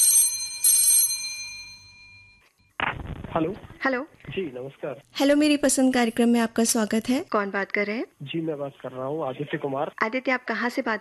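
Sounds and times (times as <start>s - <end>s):
telephone ringing for an incoming caller: 0.0s - 2.5s
speech: 3.4s - 10.9s.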